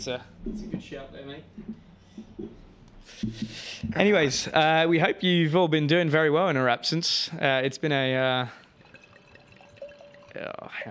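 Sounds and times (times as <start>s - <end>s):
speech: 0.0s - 8.6s, 10.3s - 10.8s
wine trickling into a small glass: 8.4s - 10.7s.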